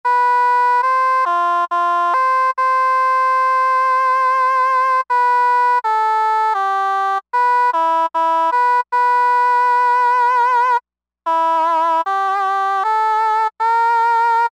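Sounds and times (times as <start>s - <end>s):
oboe preset on a synthesizer: 0.1s - 14.5s.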